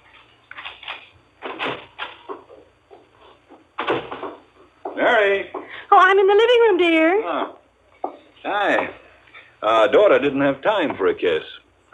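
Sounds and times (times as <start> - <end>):
man's footsteps on the walk to a house's front door: 0.0 - 5.7
speech: 5.0 - 7.6, 8.4 - 9.0, 9.6 - 11.9.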